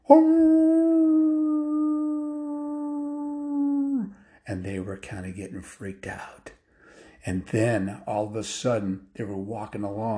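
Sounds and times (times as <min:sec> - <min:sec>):
eerie werewolf-like howling: 0:00.0 - 0:04.1
speech: 0:00.1 - 0:00.6, 0:04.5 - 0:06.6, 0:07.2 - 0:10.1.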